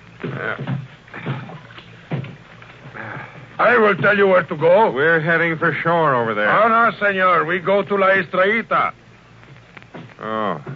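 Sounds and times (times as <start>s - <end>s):
speech: 0.4s - 1.4s, 3.6s - 9.0s, 10.2s - 10.7s
paddle strokes splashing as a small boat is paddled: 0.6s - 4.5s.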